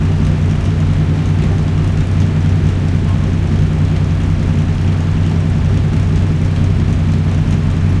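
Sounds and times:
tank engine interior running at low rpm under load: 0:00.0 - 0:07.9.

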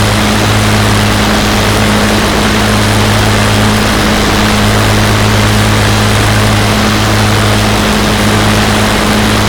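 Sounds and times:
DB605 aircraft engines: 0:00.0 - 0:09.4.

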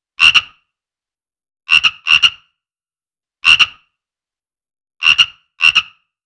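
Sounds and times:
frog croaking: 0:00.2 - 0:00.6, 0:01.7 - 0:02.6, 0:03.4 - 0:03.9, 0:05.0 - 0:06.1.

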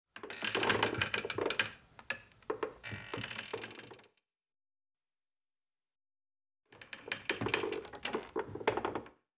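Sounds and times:
light wood creak: 0:00.2 - 0:04.2, 0:06.8 - 0:09.2.

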